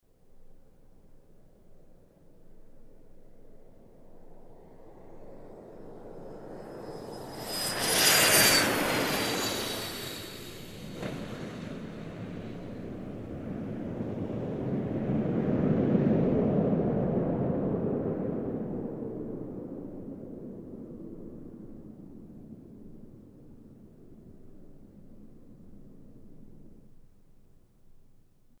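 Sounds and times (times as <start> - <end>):
aircraft soaring whirring: 2.5 - 21.7.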